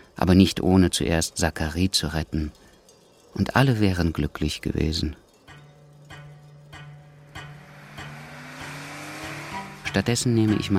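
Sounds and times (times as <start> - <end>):
speech: 0.2 - 2.6, 3.4 - 5.2, 10.0 - 10.7
luxury car engine humming while accelerating: 6.8 - 10.7.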